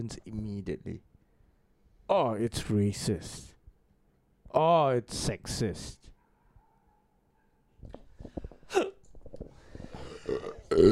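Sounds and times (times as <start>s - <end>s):
speech: 0.0s - 1.1s, 2.1s - 3.5s, 4.5s - 6.1s, 8.7s - 8.9s, 10.3s - 10.9s
sharp throaty hiccup: 8.7s - 9.1s.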